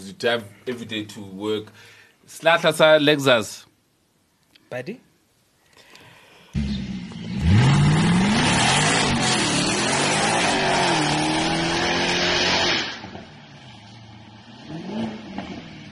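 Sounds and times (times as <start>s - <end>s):
speech: 0.1s - 3.7s, 4.7s - 5.1s
sports sedan V8 engine roaring: 6.6s - 15.8s.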